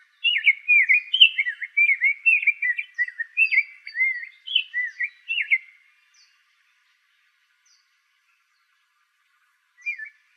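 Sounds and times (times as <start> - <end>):
rose-breasted grosbeak whistled song in Arizona: 0.0 - 6.4, 9.8 - 10.3.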